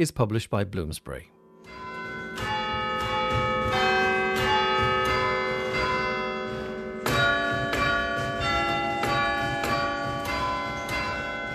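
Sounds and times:
speech: 0.0 - 1.4
church bells of a collegiate church ringing across a city in the evening: 1.4 - 11.5.

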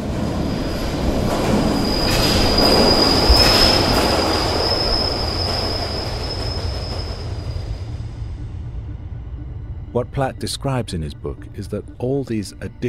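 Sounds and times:
London Underground train wheels squealing: 0.0 - 8.2
London Underground train rumbling past a railway platform: 0.0 - 12.8
speech: 10.1 - 12.8.

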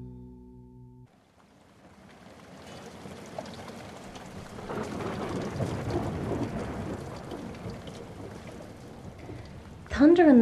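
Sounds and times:
heavy rain pouring over the border town of Gadaref in Sudan: 1.1 - 10.4
low rolling thunder of a lightning storm over Gadaref in Sudan: 2.4 - 10.4.

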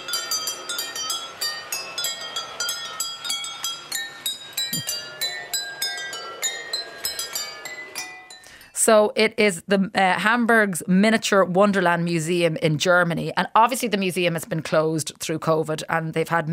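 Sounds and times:
miniature train set tapping water-filled glasses: 0.0 - 8.7
speech: 8.8 - 16.5.

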